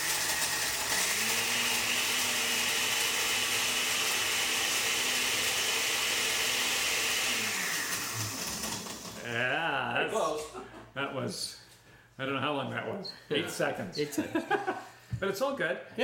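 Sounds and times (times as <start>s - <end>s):
blender crushing ice for cocktail: 0.0s - 9.2s
speech: 9.3s - 11.6s, 12.2s - 16.0s.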